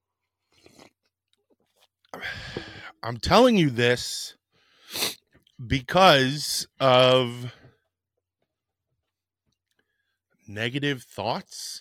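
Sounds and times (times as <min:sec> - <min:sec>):
person slurping coffee: 0:00.4 - 0:01.0
speech: 0:03.0 - 0:04.4, 0:05.6 - 0:07.6, 0:10.5 - 0:11.7.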